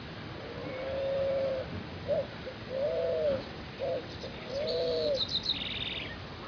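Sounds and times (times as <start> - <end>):
Spot-winged pigeon cooing at Arredondo, Córdoba: 0.4 - 5.2
small bird chirping: 3.4 - 6.2.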